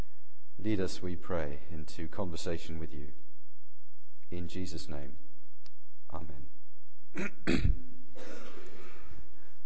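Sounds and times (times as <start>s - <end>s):
speech: 0.6s - 3.2s, 4.3s - 5.2s, 6.1s - 8.6s
rough throat clearing: 7.2s - 9.0s
person coughing: 7.2s - 9.1s.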